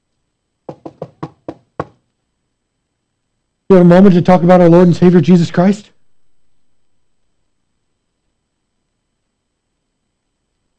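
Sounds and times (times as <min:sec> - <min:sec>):
sharp knocks on a front door: 0:00.7 - 0:02.0
speech: 0:03.7 - 0:05.9.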